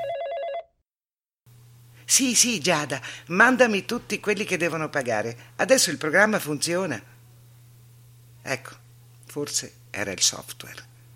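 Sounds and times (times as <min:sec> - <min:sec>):
telephone ringing with electronic trill: 0:00.0 - 0:00.7
low hum and hiss: 0:01.5 - 0:11.1
speech: 0:02.1 - 0:07.1, 0:08.4 - 0:10.9.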